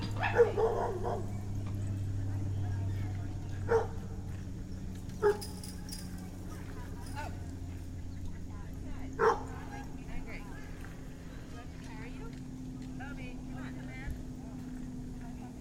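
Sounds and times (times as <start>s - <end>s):
male dog barking excitedly before going for a walk: 0.0s - 1.5s, 3.6s - 4.2s, 5.2s - 5.6s, 9.2s - 9.7s
steady low hum: 0.0s - 15.5s.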